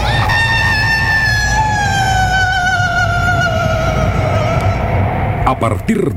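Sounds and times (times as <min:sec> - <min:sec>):
woman's long desolate wailing scream sinking in pitch on a road: 0:00.0 - 0:04.8
low gusty rumble on a road: 0:00.0 - 0:06.1
speech: 0:05.5 - 0:06.1.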